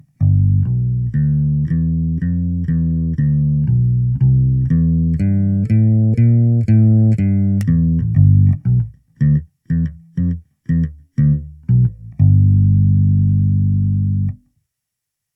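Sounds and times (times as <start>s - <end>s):
fretless bass guitar simulating a double bass with a sample: 0.0s - 14.5s.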